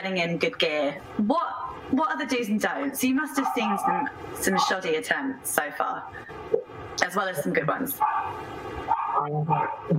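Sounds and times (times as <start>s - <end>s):
speech: 0.0s - 8.5s, 9.2s - 9.9s
dog barking with short high-pitched yappy barks: 3.4s - 4.8s, 8.0s - 9.9s.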